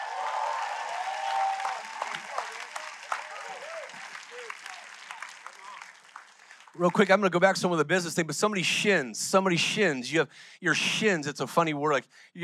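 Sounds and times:
audience clapping: 0.0s - 7.3s
speech: 6.8s - 12.4s.

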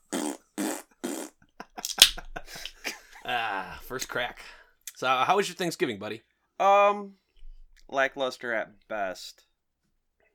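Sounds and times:
fart noises with sputtering pops and squeaks: 0.0s - 1.4s
speech: 3.3s - 7.2s, 7.9s - 9.5s.

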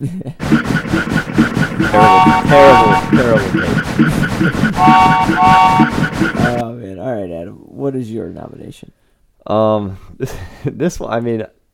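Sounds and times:
speech: 0.0s - 3.8s, 4.4s - 11.6s
train chugging sound effect: 0.4s - 6.6s
train horn blaring: 1.9s - 3.5s, 4.8s - 6.1s.

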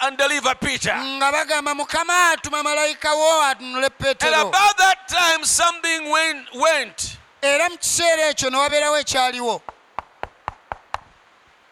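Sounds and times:
speech: 0.1s - 9.8s
sharp knocks like rapping on a door: 9.6s - 11.2s.

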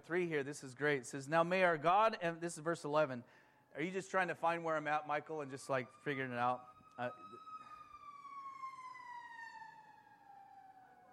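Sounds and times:
speech: 0.0s - 7.5s
ambulance siren wailing as it drives past: 4.5s - 11.1s.

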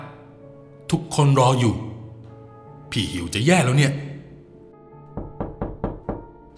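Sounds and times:
speech: 0.9s - 1.9s, 2.9s - 4.1s
firm knocking on a wooden bedroom door: 5.0s - 6.5s.

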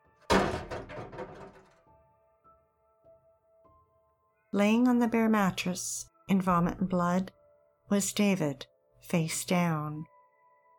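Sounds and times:
locked bedroom door being kicked in: 0.2s - 1.8s
wood and debris rattling and settling: 0.2s - 1.8s
speech: 4.6s - 10.1s.

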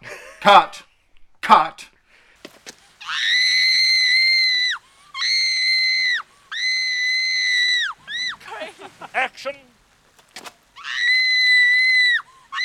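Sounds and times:
laughter: 0.0s - 0.8s, 8.0s - 9.7s
speech: 0.4s - 0.8s, 1.5s - 1.9s
woman screaming while being strangled: 3.0s - 8.6s, 10.8s - 12.6s.

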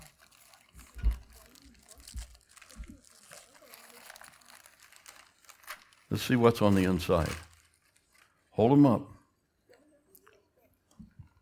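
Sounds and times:
gift paper packaging unwrapped and crumpled: 0.0s - 8.9s
speech: 6.1s - 7.5s, 8.6s - 9.1s.

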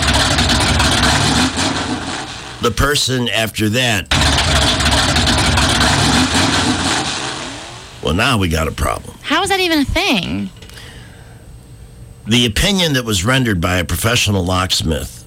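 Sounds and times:
car engine starting and idling: 0.0s - 3.1s, 4.1s - 8.9s
speech: 2.6s - 4.8s, 8.0s - 10.6s, 12.3s - 15.2s.

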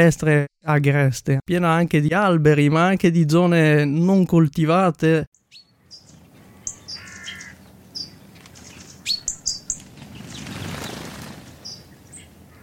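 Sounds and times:
speech: 0.0s - 5.4s
several birds chirping and calling in open countryside: 5.4s - 12.6s
steady outdoor hiss in open countryside: 5.7s - 12.6s.

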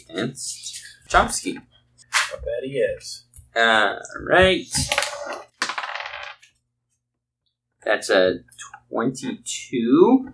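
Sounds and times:
speech: 0.0s - 1.7s, 2.3s - 5.4s, 7.8s - 10.3s
dice rolling on a hard tabletop: 4.4s - 6.6s.

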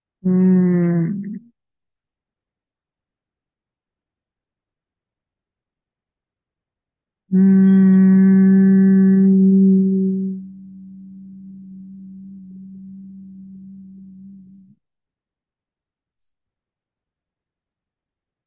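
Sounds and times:
voice humming a sung ng tone for crown chakra meditation: 0.2s - 1.4s, 7.3s - 14.8s.

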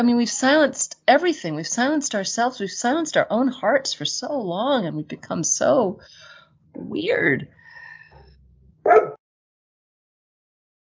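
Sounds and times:
speech: 0.0s - 7.6s
single loud sharp dog bark: 8.8s - 9.2s.

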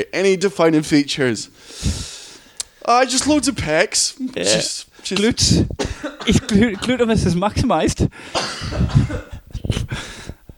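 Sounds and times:
speech: 0.0s - 2.1s, 2.9s - 10.2s
man coughing heavily: 5.5s - 7.2s, 8.1s - 10.0s.

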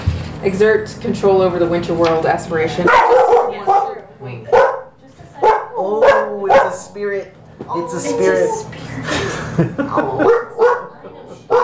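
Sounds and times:
speech: 0.4s - 3.8s, 7.0s - 10.5s
guard dog barking: 2.8s - 6.9s, 10.2s - 11.6s
laughter: 8.2s - 10.8s.

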